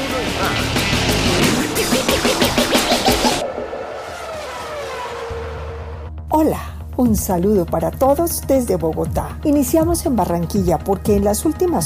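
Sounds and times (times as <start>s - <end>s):
Formula 1 racing car engines roaring and revving: 0.0s - 6.1s
speech: 6.4s - 11.8s.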